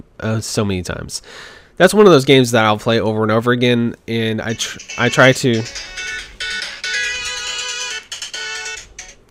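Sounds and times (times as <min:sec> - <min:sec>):
speech: 0:00.0 - 0:06.6
phone ringtone with bright electronic melody: 0:04.5 - 0:09.2.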